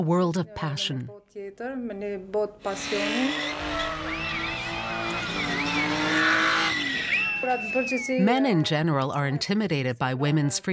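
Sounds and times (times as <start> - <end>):
speech: 0.0 - 5.5, 7.4 - 10.7
steady loud car engine roar: 2.7 - 7.8
tires squealing as a car drifts at a drifting competition in North Macedonia: 2.7 - 8.1.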